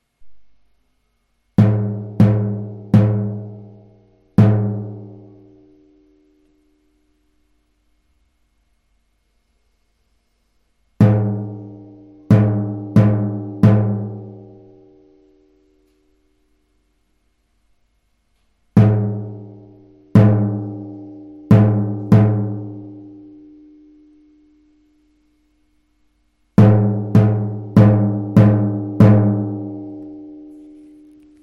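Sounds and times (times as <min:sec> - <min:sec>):
ta titi drum pattern: 0:01.6 - 0:05.4, 0:11.0 - 0:14.6, 0:18.8 - 0:23.0, 0:26.6 - 0:30.4.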